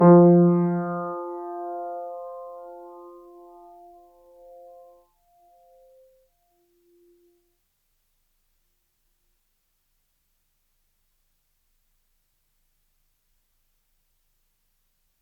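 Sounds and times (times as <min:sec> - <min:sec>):
Kawai grand piano F2 note sustaining: 0:00.0 - 0:03.2.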